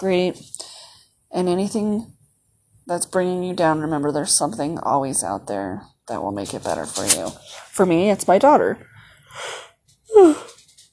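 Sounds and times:
speech: 0:00.0 - 0:00.6, 0:01.3 - 0:02.2, 0:02.9 - 0:09.6, 0:10.2 - 0:10.5
person yawning: 0:09.4 - 0:10.6.

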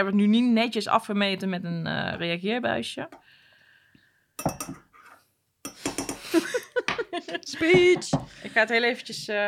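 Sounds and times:
speech: 0:00.0 - 0:03.4, 0:04.4 - 0:04.8, 0:05.7 - 0:09.4
spoon stirring a drink made with Verdecho wine in a glass jug: 0:04.4 - 0:04.8
laughter: 0:06.2 - 0:07.9.

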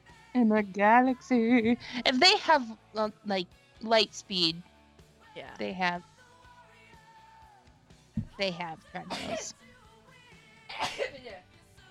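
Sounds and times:
speech: 0:00.4 - 0:04.7, 0:05.4 - 0:06.1, 0:08.4 - 0:09.6
soft sneeze caused by pollen: 0:09.1 - 0:09.5, 0:10.7 - 0:11.2.

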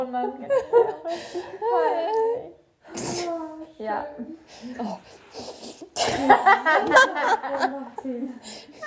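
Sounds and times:
speech: 0:00.1 - 0:02.1, 0:03.9 - 0:08.8
person sneezing: 0:02.9 - 0:03.5, 0:05.4 - 0:06.3
laughter: 0:06.0 - 0:08.3.

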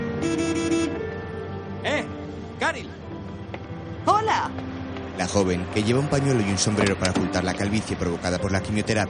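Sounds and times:
car horn of a car parked in front of a night school: 0:00.2 - 0:01.2
speech: 0:04.4 - 0:09.0.

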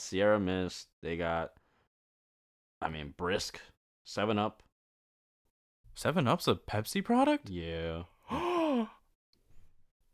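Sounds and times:
speech: 0:00.0 - 0:01.6, 0:02.8 - 0:04.7, 0:06.0 - 0:09.0
sharp voiced gasp: 0:08.2 - 0:09.0.

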